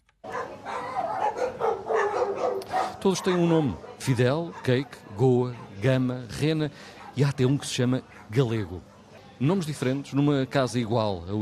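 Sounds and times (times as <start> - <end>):
chorus of dogs barking and yelping at an animal shelter: 0.3 - 6.0
speech: 3.0 - 11.4.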